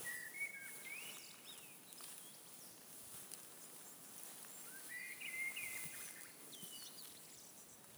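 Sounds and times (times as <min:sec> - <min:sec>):
common blackbird Turdus merula singing softly in forest in Tukums municipality Latvia: 0:00.0 - 0:02.4, 0:04.6 - 0:07.4.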